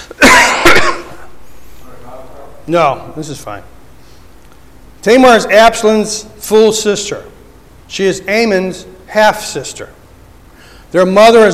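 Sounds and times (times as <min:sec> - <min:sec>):
throaty throat clearing: 0:00.0 - 0:01.3
harsh coughing: 0:00.0 - 0:01.4
speech: 0:02.7 - 0:03.8, 0:05.0 - 0:10.0, 0:10.9 - 0:11.5.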